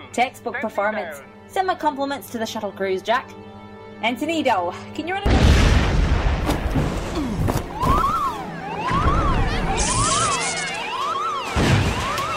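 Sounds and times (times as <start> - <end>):
speech: 0.2 - 5.7
heavy booming explosions in a shuttle bay: 5.2 - 7.5
crashing debris in a shuttle bay: 5.3 - 8.3, 11.4 - 12.3
rising-and-falling electronic alarm wailing: 7.8 - 12.3.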